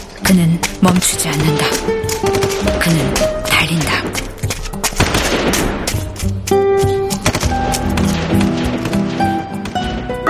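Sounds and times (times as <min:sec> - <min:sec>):
speech: 0:00.3 - 0:05.7
repeated gunshots: 0:04.9 - 0:06.2, 0:07.1 - 0:10.2.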